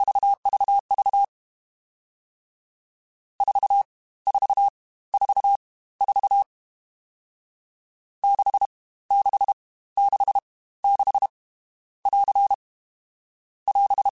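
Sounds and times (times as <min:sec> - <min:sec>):
CW Morse code groups in short staccato runs: 0:00.0 - 0:01.3, 0:03.4 - 0:06.5, 0:08.2 - 0:11.3, 0:12.0 - 0:12.6, 0:13.7 - 0:14.1.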